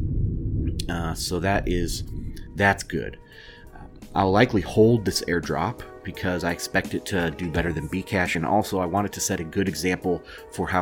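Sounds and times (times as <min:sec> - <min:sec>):
thunder rumbling during a thunderstorm: 0:00.0 - 0:05.9
speech: 0:00.9 - 0:10.8.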